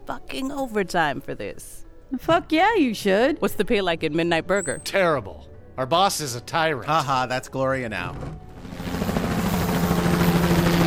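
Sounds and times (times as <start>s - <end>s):
speech: 0.3s - 8.4s
army helicopter flying overhead: 8.5s - 10.8s.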